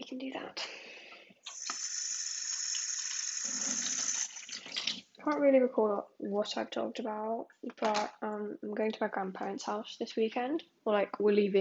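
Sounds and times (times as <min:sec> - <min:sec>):
speech: 0:00.2 - 0:00.8, 0:05.2 - 0:11.5
tap water running as containers are rinsed: 0:01.4 - 0:05.2.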